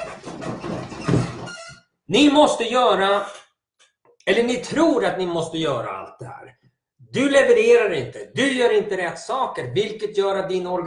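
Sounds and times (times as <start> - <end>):
office chair squeaking and creaking: 0.0 - 2.0
speech: 2.1 - 3.4, 4.2 - 10.8.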